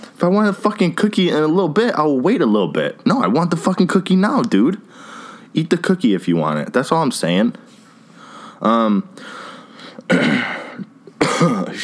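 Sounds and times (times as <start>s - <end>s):
speech: 0.2s - 7.8s, 8.6s - 9.4s, 10.1s - 10.6s
rough breathy cough-like rasp: 10.1s - 11.8s
short voiced throat clearing: 10.1s - 11.8s.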